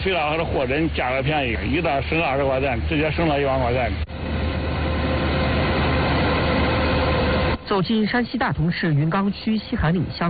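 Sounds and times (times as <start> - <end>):
speech: 0.0 - 4.4, 7.7 - 10.2
combine harvester working at full power in a golden corn field in Shanxi: 0.0 - 7.8.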